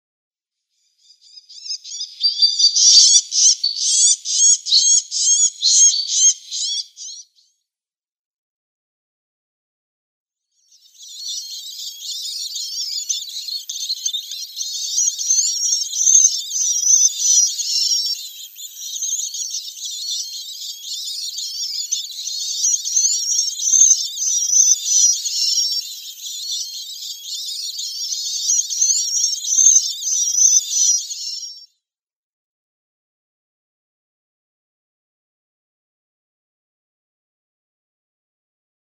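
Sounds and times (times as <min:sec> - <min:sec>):
Red-backed Shrike nestlings: 0:01.9 - 0:07.2, 0:11.2 - 0:31.6.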